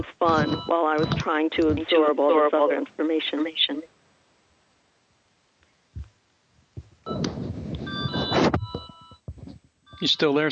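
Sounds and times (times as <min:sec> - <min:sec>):
telephone ringing with electronic tones: 0:00.0 - 0:02.8, 0:07.1 - 0:09.2, 0:09.9 - 0:10.5
speech: 0:00.0 - 0:04.0, 0:10.0 - 0:10.5
loud rushing rustling noise: 0:05.9 - 0:10.0
soft thumps: 0:06.0 - 0:10.1.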